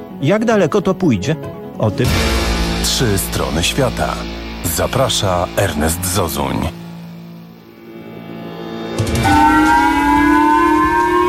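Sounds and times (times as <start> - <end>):
speech: 0.2 - 6.8
civil defense air-raid sirens on Hokkaido, Japan, sounding a missile alert: 9.1 - 11.2.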